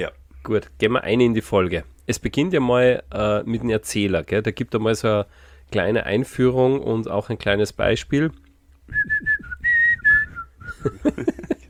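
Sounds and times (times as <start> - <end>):
speech: 0.0 - 9.4, 10.8 - 11.3
person whistling a short clear tune: 8.9 - 11.1
laughter: 10.8 - 11.6.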